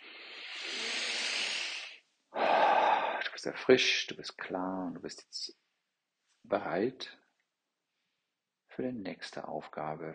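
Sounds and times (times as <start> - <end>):
deep breath during a guided relaxation exercise: 0.0 - 3.4
speech: 3.4 - 5.6, 6.4 - 7.2, 8.8 - 10.1.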